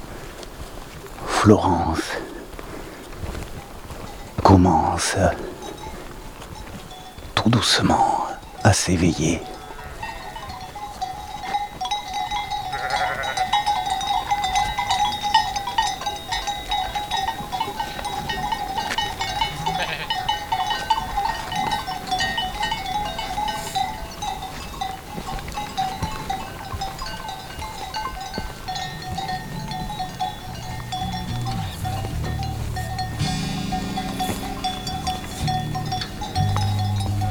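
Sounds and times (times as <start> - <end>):
many small bells jingling: 0.6 - 37.2
speech: 1.4 - 2.3, 4.6 - 5.6, 7.5 - 9.5
flock of ewes bleating while moving in single file: 7.4 - 11.6, 12.2 - 24.6, 28.6 - 37.2.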